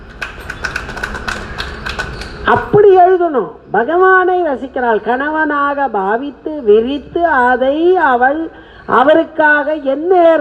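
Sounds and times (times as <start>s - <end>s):
hands clapping: 0.0s - 2.4s
speech: 2.5s - 10.4s.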